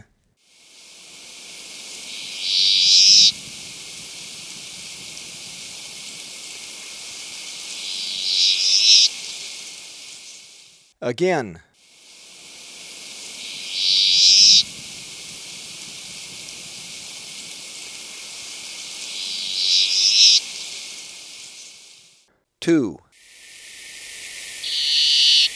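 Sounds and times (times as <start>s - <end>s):
Plumbeous Sierra-Finch in Ecuador: 0.8s - 10.8s, 11.9s - 22.1s, 23.4s - 25.5s.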